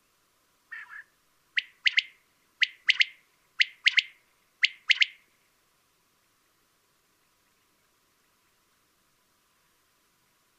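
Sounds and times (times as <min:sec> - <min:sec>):
common quail three-note calls: 0:00.7 - 0:05.2.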